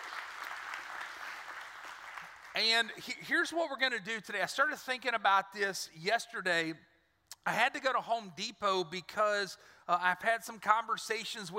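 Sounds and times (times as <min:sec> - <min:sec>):
audience applauding: 0:00.0 - 0:02.6
speech: 0:02.6 - 0:11.5.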